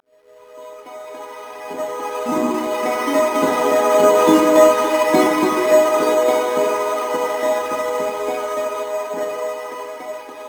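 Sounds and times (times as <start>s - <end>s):
melodies: 2.2s - 8.4s.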